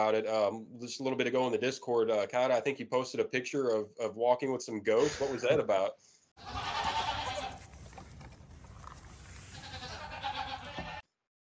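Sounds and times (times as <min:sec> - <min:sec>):
speech: 0:00.0 - 0:06.9
goats bleating: 0:06.4 - 0:07.7, 0:09.4 - 0:11.0
farmyard background: 0:06.4 - 0:11.0.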